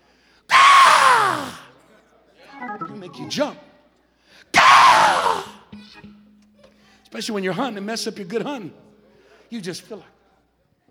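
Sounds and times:
person screeching in imitation of a raven's cry: 0:00.5 - 0:01.6, 0:04.6 - 0:05.6
speech: 0:03.1 - 0:03.7, 0:07.1 - 0:08.9, 0:09.5 - 0:10.2.

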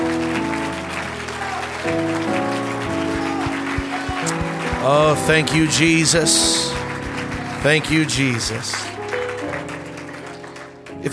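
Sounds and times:
church service audience clapping hands in praise: 0:00.0 - 0:11.1
speech: 0:01.8 - 0:02.1, 0:04.9 - 0:06.8, 0:07.6 - 0:08.9
organ-like sustained music tones: 0:03.1 - 0:08.7.

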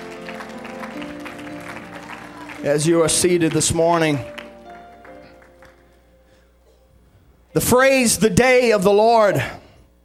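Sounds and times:
church congregation clapping hands in praise: 0:00.0 - 0:06.1
speech: 0:02.6 - 0:04.4, 0:07.6 - 0:09.6.

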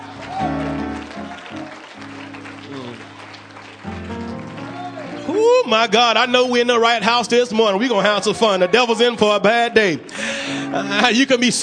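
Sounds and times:
audience clapping in praise of God: 0:00.0 - 0:05.4
organ-like musical chords: 0:00.0 - 0:11.6
speech: 0:05.7 - 0:11.6.

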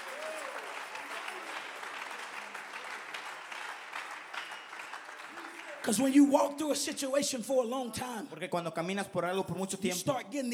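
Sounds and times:
audience applauding: 0:00.0 - 0:06.8
speech: 0:05.8 - 0:10.5.

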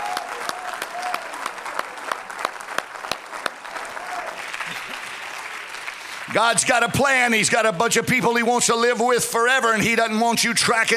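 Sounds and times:
audience clapping hands: 0:00.0 - 0:07.8
speech: 0:06.3 - 0:10.9.

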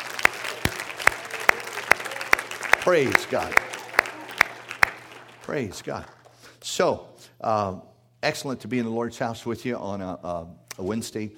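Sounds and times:
hand claps at a church service: 0:00.0 - 0:06.5
speech: 0:02.8 - 0:03.7, 0:05.5 - 0:11.3.

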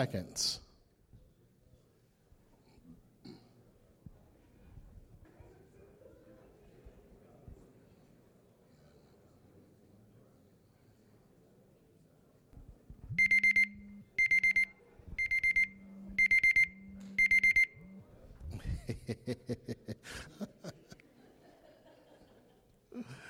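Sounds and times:
electronic alarm clock beeping: 0:13.2 - 0:18.0
person chuckling: 0:18.4 - 0:23.2.

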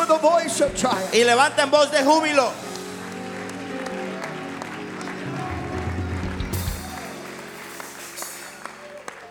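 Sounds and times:
speech: 0:00.1 - 0:02.7
audience clapping hands in sustained applause: 0:02.0 - 0:09.2.

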